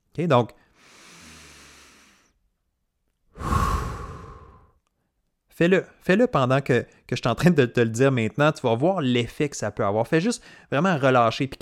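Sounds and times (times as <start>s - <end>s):
speech: 0.2s - 0.6s, 5.6s - 11.5s
fuller louder exhale: 0.6s - 2.4s, 3.4s - 4.8s
long airy inhale: 0.6s - 2.4s, 3.4s - 4.8s.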